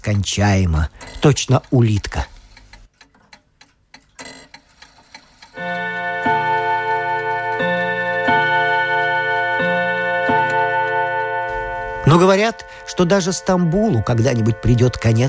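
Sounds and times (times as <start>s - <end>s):
speech: 0.0s - 2.3s, 12.5s - 15.2s
clock ticking: 0.0s - 15.2s
clock chimes striking the hour: 5.6s - 15.2s.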